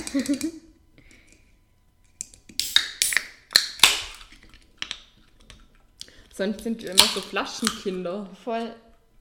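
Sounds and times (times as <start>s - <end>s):
speech: 0.1s - 0.7s, 6.4s - 8.8s
beer cans cracked open with metallic clicks and fizzy hisses: 2.5s - 5.6s, 6.9s - 7.8s.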